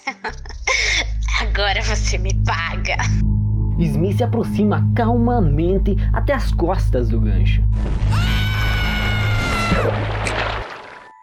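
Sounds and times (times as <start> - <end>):
laughter: 0.0 - 1.6
speech: 1.7 - 7.9, 9.7 - 10.4
harsh drawn-out screaming: 8.0 - 9.9.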